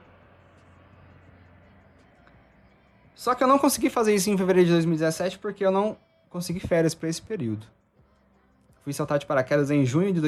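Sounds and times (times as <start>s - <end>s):
airplane passing overhead: 0.0s - 6.3s
speech: 3.2s - 7.8s, 8.8s - 10.2s.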